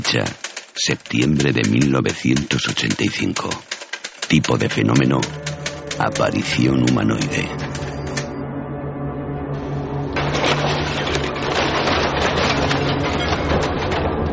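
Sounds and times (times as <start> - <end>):
excavator tearing down a shanty shack in A Coruña: 0.0 - 8.2, 10.2 - 14.3
speech: 0.1 - 7.7
heavy excavator engine droning: 4.4 - 14.3.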